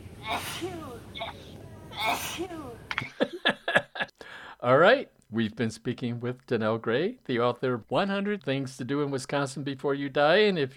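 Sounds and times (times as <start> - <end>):
loud breathy sneezes: 0.2 - 2.7
speech: 0.3 - 3.0, 4.6 - 10.7
laughter: 2.9 - 4.1.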